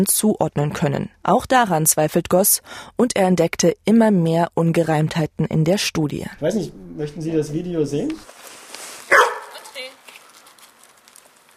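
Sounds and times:
speech: 0:00.0 - 0:08.4
dog yapping: 0:09.1 - 0:09.8.

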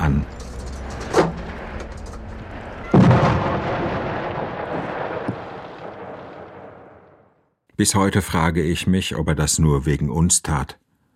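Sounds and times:
speech: 0:00.1 - 0:00.4, 0:07.8 - 0:10.8
artillery gun firing a shell near Sarajevo: 0:01.2 - 0:07.1.

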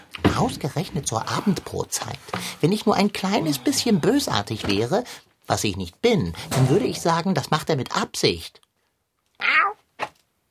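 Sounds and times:
speech: 0:00.4 - 0:08.6
tomcat meowing: 0:09.4 - 0:09.8.

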